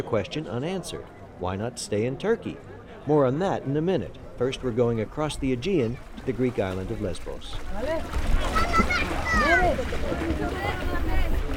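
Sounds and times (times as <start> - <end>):
speech: 0.0 - 11.3
steady lapping water at the port: 2.4 - 11.5
children splashing in the water at the port: 5.4 - 11.5
refugee children shouting excitedly at a port: 8.4 - 11.4.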